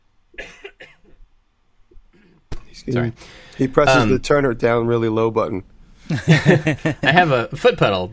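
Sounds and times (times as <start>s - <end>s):
person coughing: 0.4s - 1.2s
speech: 2.8s - 8.1s
laughter: 6.1s - 7.3s.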